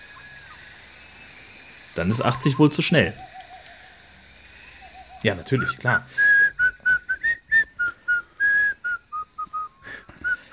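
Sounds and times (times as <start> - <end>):
person whistling a tune: 0.0 - 10.5
speech: 2.0 - 3.3, 5.2 - 6.3.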